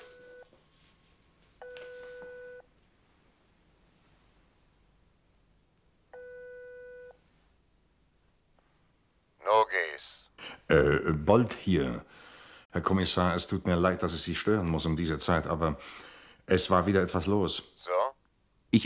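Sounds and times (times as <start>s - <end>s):
telephone ringback tones: 0.0s - 0.5s, 1.6s - 2.6s
person speaking on telephone: 9.4s - 11.3s, 17.8s - 18.2s
speech: 10.0s - 18.0s.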